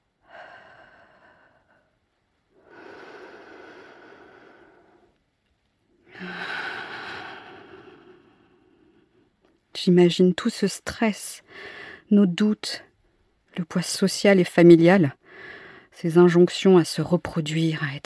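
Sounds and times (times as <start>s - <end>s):
slow breathing out through the mouth: 0.2s - 5.2s, 6.1s - 9.2s
speech: 9.8s - 12.9s, 13.6s - 18.0s.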